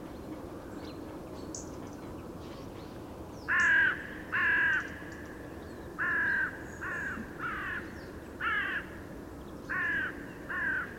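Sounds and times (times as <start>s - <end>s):
carrion crow Corvus corone giving harsh flat caws: 3.5s - 5.1s, 6.0s - 9.0s, 9.7s - 10.9s.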